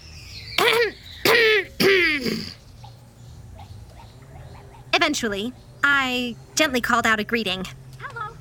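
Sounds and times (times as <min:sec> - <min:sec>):
throaty coughs: 0:00.6 - 0:02.6
speech: 0:05.2 - 0:07.8.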